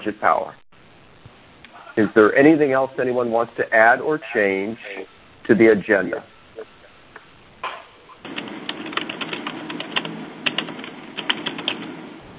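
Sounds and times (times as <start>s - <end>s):
speech: 0.0s - 0.6s, 2.0s - 6.7s
faint hum: 0.0s - 12.3s
typing on a computer keyboard during an online group meeting call: 8.3s - 11.9s.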